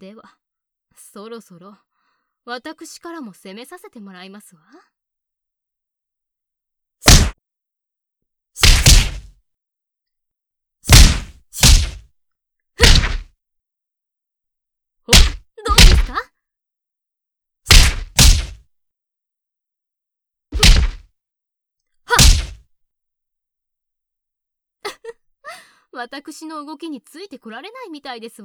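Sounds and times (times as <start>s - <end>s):
speech: 0.0s - 0.4s, 1.0s - 5.0s, 26.0s - 28.4s
punches landing on an opponent: 7.0s - 7.4s, 8.6s - 9.3s, 10.9s - 12.0s, 12.8s - 13.3s, 15.1s - 16.2s, 17.7s - 18.6s, 20.6s - 21.0s, 22.1s - 22.6s.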